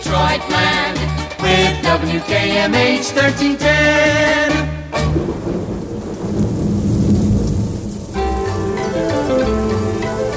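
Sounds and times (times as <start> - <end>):
speech: 0.1 - 6.5
steady hissing rain: 4.8 - 10.3
deep rolling thunder rumble: 4.9 - 10.3
music with sustained tones: 8.2 - 10.3.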